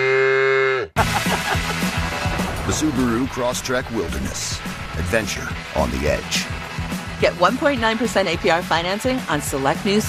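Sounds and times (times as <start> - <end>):
cow mooing: 0.0 - 0.9
laughter: 1.0 - 4.2
speech: 2.7 - 6.5, 7.2 - 10.0.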